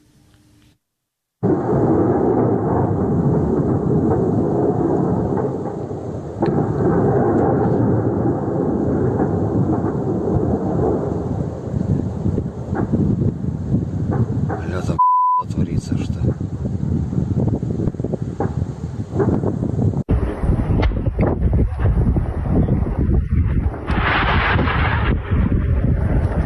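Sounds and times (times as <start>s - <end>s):
sharp cracks and bangs of ammunition depot explosions: 1.4s - 13.4s, 14.0s - 14.9s, 18.4s - 19.6s, 23.4s - 26.4s
ammunition depot explosions detonating in Berdyansk: 1.4s - 15.0s, 15.6s - 26.4s
wind buffeting the microphone: 1.4s - 26.4s.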